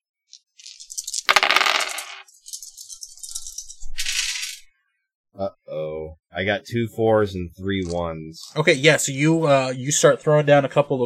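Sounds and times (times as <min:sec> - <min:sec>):
five dice rattling and clattering as they are rolled for a game: 0:00.6 - 0:04.6
speech: 0:05.4 - 0:11.0.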